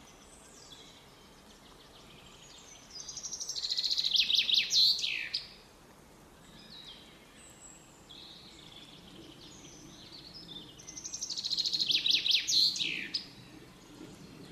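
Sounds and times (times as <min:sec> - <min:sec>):
common chaffinch Fringilla coelebs song of descending trilled phrases: 0:00.0 - 0:05.7, 0:06.3 - 0:14.5.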